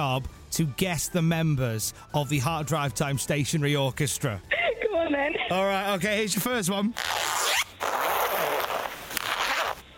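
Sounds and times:
speech: 0.0 - 8.0
pencil case zipper being opened: 7.0 - 9.8.

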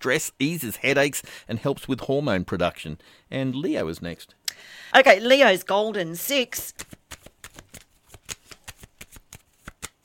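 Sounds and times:
speech: 0.0 - 6.9
deck of cards shuffled by hand: 6.6 - 10.0.

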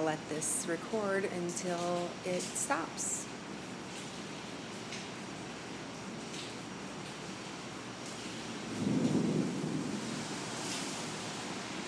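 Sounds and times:
speech: 0.0 - 3.4
steady rain: 0.0 - 11.8
rolling thunder: 8.6 - 11.4.

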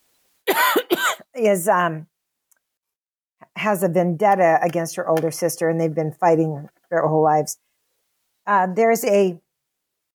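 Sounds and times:
rough voiced throat-clearing: 0.5 - 1.2
person coughing: 0.5 - 1.3
speech: 1.4 - 2.1, 3.6 - 7.6, 8.5 - 9.4.

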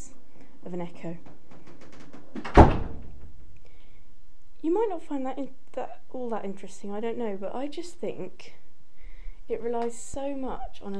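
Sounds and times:
speech: 0.6 - 1.4, 4.6 - 8.6, 9.5 - 10.9
door banging shut inside a house: 1.2 - 3.4.

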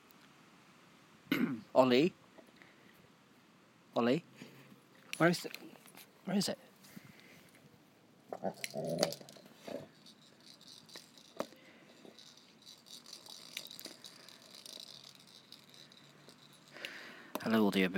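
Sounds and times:
speech: 1.3 - 2.2, 4.0 - 4.3, 5.2 - 5.7, 6.3 - 6.6, 8.4 - 9.9, 17.4 - 17.9
dog worrying a rattling rubbery ball toy: 8.4 - 16.9.

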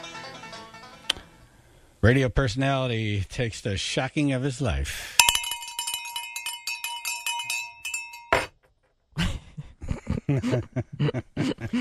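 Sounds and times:
speech: 2.0 - 5.2, 10.4 - 11.7
handbell ringing: 5.2 - 8.4
handbell clunking as it is set down: 5.2 - 8.6
laughter: 9.2 - 11.7.

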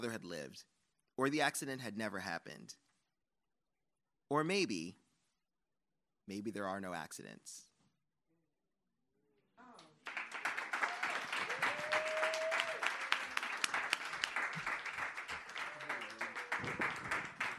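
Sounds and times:
speech: 0.0 - 2.8, 4.3 - 5.0, 6.3 - 7.7, 16.6 - 16.9
crowd applause: 10.0 - 17.5.

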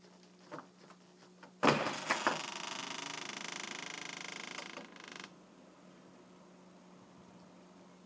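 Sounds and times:
stuck frozen front door grinding and creaking open: 1.6 - 5.3.

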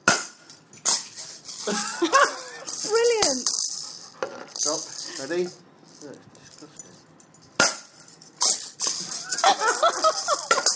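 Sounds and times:
bat striking a ball: 0.0 - 0.4, 7.6 - 7.9
speech: 1.6 - 3.6, 5.3 - 6.2
laughter: 1.7 - 2.7, 9.2 - 10.7.

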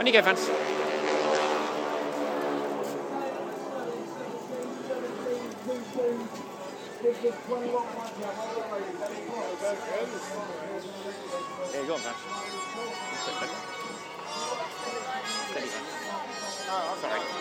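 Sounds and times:
speech: 0.0 - 0.8, 7.0 - 17.3
propeller aircraft of a wing-walking display team flying overhead: 0.0 - 7.0, 7.6 - 17.3.

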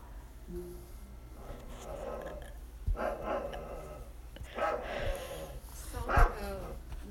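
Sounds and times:
low hum: 0.0 - 7.0
dog growling and grumbling: 1.4 - 5.6.

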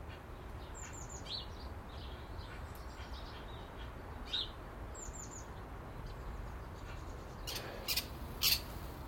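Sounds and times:
magpies chirping and squawking nesting in a big blue Land Rover: 0.1 - 5.5, 6.7 - 8.9.

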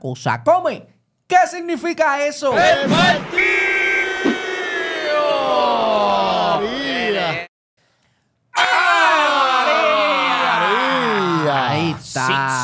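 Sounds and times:
speech: 0.0 - 3.6
studio audience shouting and yelling: 2.5 - 7.5, 8.6 - 12.6.

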